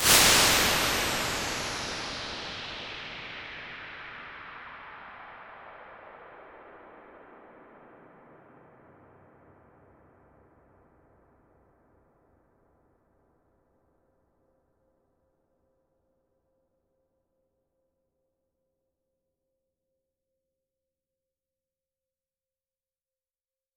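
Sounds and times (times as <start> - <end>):
extra large reverb: 0.0 - 4.6.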